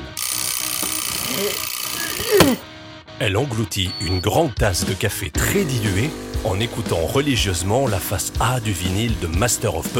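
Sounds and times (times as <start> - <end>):
alarm clock ringing: 0.2 - 2.3
speech: 1.4 - 1.7, 2.3 - 9.9.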